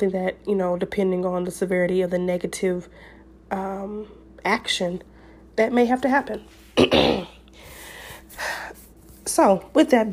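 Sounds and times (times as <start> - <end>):
speech: 0.0 - 7.3, 9.3 - 10.1
sharp explosive cough: 6.8 - 7.4.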